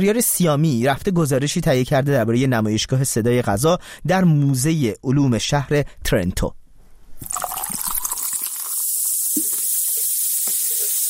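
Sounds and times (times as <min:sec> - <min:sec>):
speech: 0:00.0 - 0:06.6
soda pouring and fizzing: 0:07.2 - 0:11.0.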